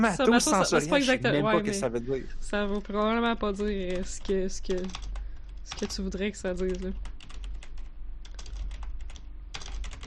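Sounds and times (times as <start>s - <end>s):
speech: 0.0s - 7.1s
computer keyboard typing: 3.6s - 10.0s.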